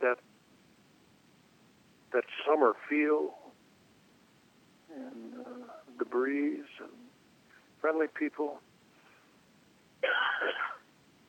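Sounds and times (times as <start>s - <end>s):
speech: 2.2s - 3.4s, 6.0s - 7.0s, 7.8s - 8.7s
person coughing: 10.0s - 10.9s.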